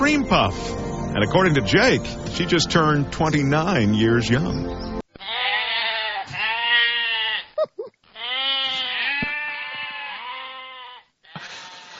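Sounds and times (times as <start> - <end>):
speech: 0.0 - 4.8
goats bleating: 5.1 - 11.9.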